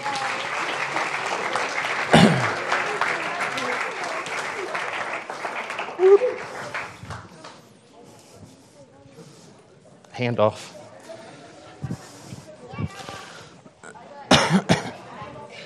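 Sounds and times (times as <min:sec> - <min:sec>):
crowd of adults clapping for children: 0:00.0 - 0:08.2
voices murmuring: 0:01.0 - 0:15.6
speech: 0:10.2 - 0:10.8.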